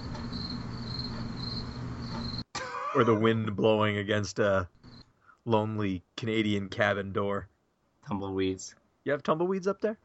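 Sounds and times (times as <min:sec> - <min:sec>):
crickets chirping: 0:00.0 - 0:02.5, 0:04.8 - 0:05.2
speech: 0:03.0 - 0:04.8, 0:05.5 - 0:10.0.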